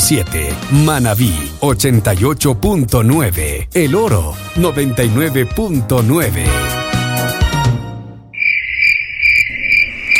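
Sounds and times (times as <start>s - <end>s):
speech: 0.1s - 6.9s
cricket chirping as a radio time signal: 8.4s - 10.1s.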